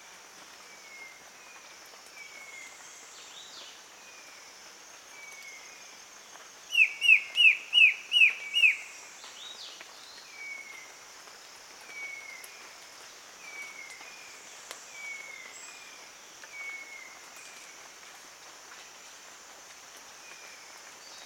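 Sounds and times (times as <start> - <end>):
soft hiss: 0.0 - 21.2
male black-headed antbird calling with whistles: 6.8 - 8.9.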